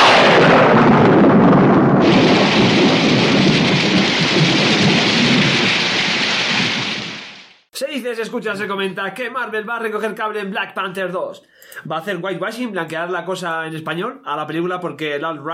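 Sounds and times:
deep rolling thunder rumbles: 0:00.0 - 0:07.6
heavy rain hissing: 0:02.0 - 0:07.6
speech: 0:08.2 - 0:15.5.

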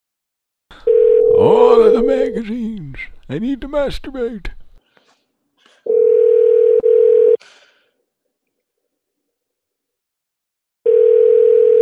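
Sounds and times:
speech: 0:00.7 - 0:04.6
unanswered telephone call ringing out with no voicemail: 0:00.8 - 0:02.6, 0:05.9 - 0:07.4, 0:10.9 - 0:11.7.

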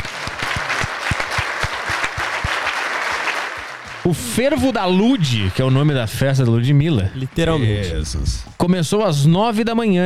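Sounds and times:
applause with many hands clapping: 0:00.0 - 0:04.5
speech: 0:04.1 - 0:10.0.

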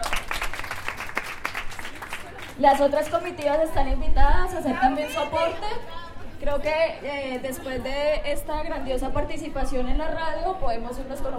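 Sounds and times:
group applauding at a radio gathering: 0:00.0 - 0:03.7
speech: 0:02.6 - 0:11.3.

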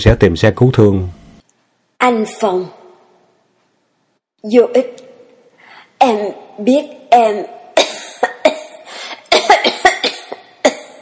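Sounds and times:
speech: 0:00.0 - 0:01.2, 0:02.0 - 0:02.8, 0:04.4 - 0:05.0, 0:06.0 - 0:07.6
wounded woman with knife and bullet wounds choking and coughing: 0:07.8 - 0:10.9.

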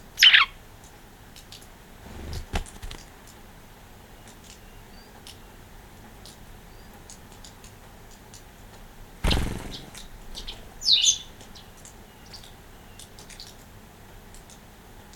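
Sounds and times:
white wagtail high chirps: 0:00.2 - 0:00.5, 0:09.3 - 0:13.2
loud rushing burst: 0:09.2 - 0:10.2.

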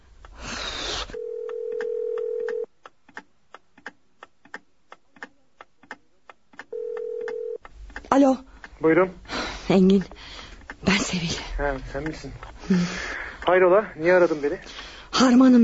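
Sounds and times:
regular ticks: 0:00.0 - 0:00.4, 0:01.1 - 0:15.6
telephone ringback tone on an outgoing call: 0:01.2 - 0:02.7, 0:06.7 - 0:07.6
speech: 0:08.2 - 0:10.2, 0:10.8 - 0:15.6.

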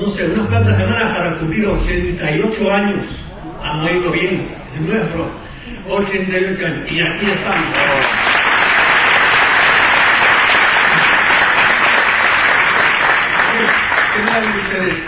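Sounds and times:
speech: 0:00.0 - 0:08.2, 0:14.4 - 0:15.0
conference audience applause: 0:07.4 - 0:15.0.

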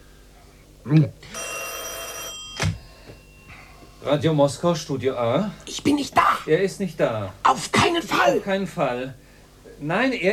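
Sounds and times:
speech: 0:00.8 - 0:01.5, 0:04.0 - 0:09.2, 0:09.8 - 0:10.3
telephone bell ringing in Moscow: 0:01.3 - 0:04.0.

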